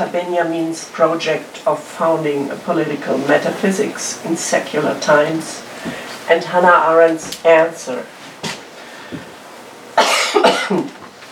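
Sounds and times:
speech: 0.0 - 8.2
speaker giving a talk coughing with rattling hacks: 10.0 - 11.0.

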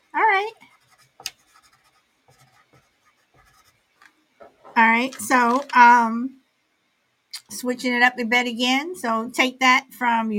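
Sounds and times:
handwriting with a pen or pencil scratching on paper: 0.6 - 3.8
speech: 4.8 - 6.4, 7.5 - 10.3.

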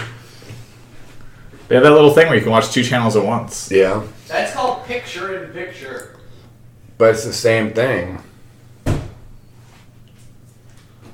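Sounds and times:
speech: 1.7 - 6.1, 7.0 - 8.2
cat attacking a door: 8.8 - 9.2.

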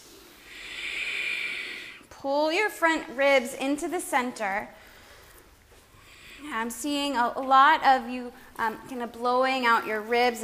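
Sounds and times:
ujjayi breath exhale through a constricted throat in a yoga class: 0.0 - 2.1, 4.8 - 6.5
speech: 2.2 - 4.8, 6.4 - 10.4.

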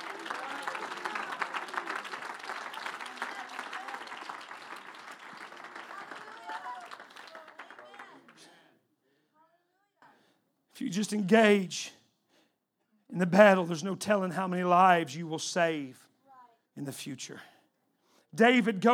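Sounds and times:
audience clapping hands: 0.0 - 8.7
speech: 10.8 - 12.0, 13.2 - 16.0, 16.8 - 17.5, 18.3 - 18.9.

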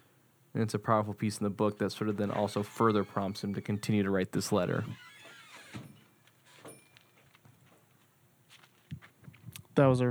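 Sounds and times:
speech: 0.6 - 5.1, 9.8 - 10.0
screen door swinging open and shut with rattling clunks: 0.7 - 7.7
screen door thud: 1.7 - 6.9.

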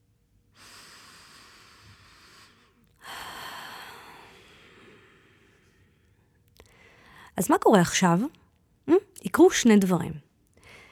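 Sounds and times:
slow deep breaths in and out: 0.5 - 7.4, 10.5 - 10.9
speech: 7.4 - 8.4, 9.4 - 10.2.

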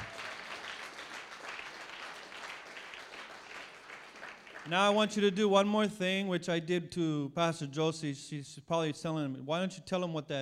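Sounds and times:
audience applauding: 0.0 - 5.0
speech: 4.7 - 10.4.

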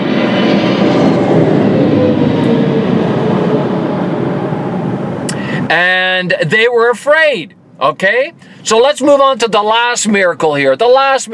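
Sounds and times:
large jet aircraft roaring overhead: 0.0 - 8.7
speech: 5.7 - 11.3.

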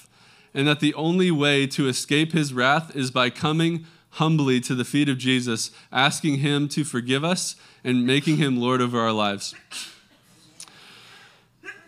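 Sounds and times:
faint hiss: 0.0 - 11.8
speech: 0.5 - 10.0
single short breathy sneeze: 9.6 - 10.4, 11.6 - 11.8.

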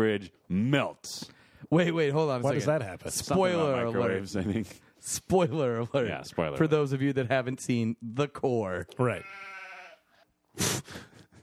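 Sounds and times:
speech: 0.0 - 9.5, 10.6 - 11.0
goat bleating: 9.1 - 10.2.

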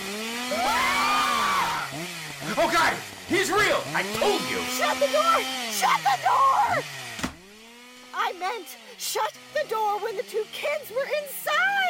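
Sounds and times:
chainsaw running: 0.0 - 11.8
speech: 2.6 - 7.0, 8.3 - 11.8.

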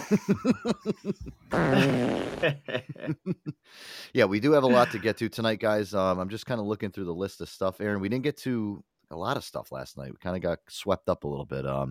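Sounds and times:
laughter: 0.0 - 3.5, 4.7 - 5.1
speech: 0.1 - 11.8
comedic fart sound effect: 1.5 - 2.7.

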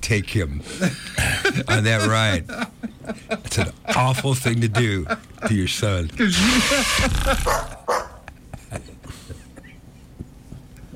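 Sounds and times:
speech: 0.1 - 7.7
laughter: 0.7 - 9.8
dog barking: 7.4 - 8.2.

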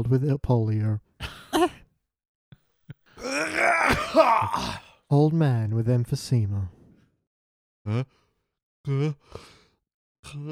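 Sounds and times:
speech: 0.0 - 1.8, 3.4 - 6.8, 7.9 - 8.2, 8.8 - 9.6, 10.2 - 10.5
person performing theatrical exaggerated coughing: 3.2 - 4.8.

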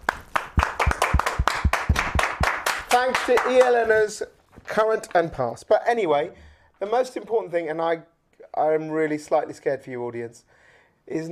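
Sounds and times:
small group applauding: 0.0 - 4.1
speech: 3.0 - 11.3.

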